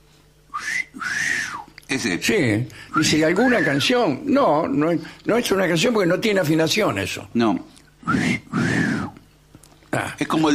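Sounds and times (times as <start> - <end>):
two-part wolf whistle at a woman passing by: 0.5 - 1.7, 3.0 - 3.9, 8.0 - 9.2
speech: 1.9 - 8.3, 10.2 - 10.5.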